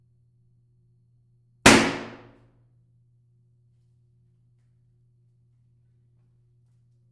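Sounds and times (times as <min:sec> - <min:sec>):
balloon popping: 0:01.7 - 0:02.2.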